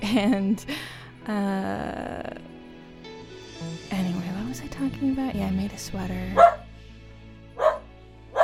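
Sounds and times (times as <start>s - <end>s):
speech: 0.1s - 2.4s, 3.6s - 6.6s
dog barking: 6.3s - 6.7s, 7.5s - 8.4s.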